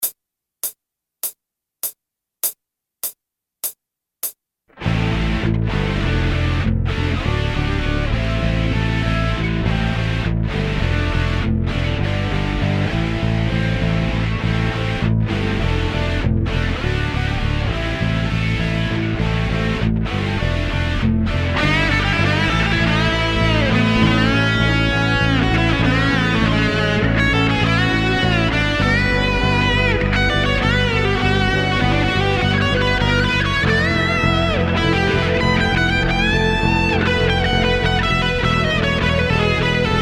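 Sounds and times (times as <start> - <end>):
eighth-note play-along music without drums: 2.4 - 40.0.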